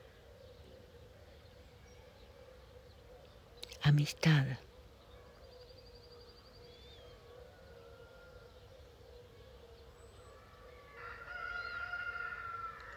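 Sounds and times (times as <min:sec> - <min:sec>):
speech: 0:03.8 - 0:04.7
rooster crowing: 0:07.2 - 0:08.6, 0:10.8 - 0:12.9.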